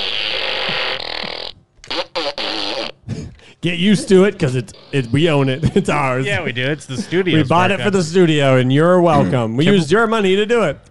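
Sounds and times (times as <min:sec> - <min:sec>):
toy fart gun buzzy raspberry: 0:00.0 - 0:03.1, 0:04.0 - 0:05.4
speech: 0:03.6 - 0:10.9.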